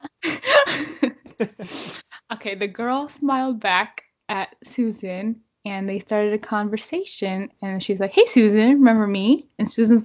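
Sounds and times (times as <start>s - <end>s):
speech: 1.4s - 10.0s
person letting out a theatrical drawn-out gasp: 1.6s - 2.2s.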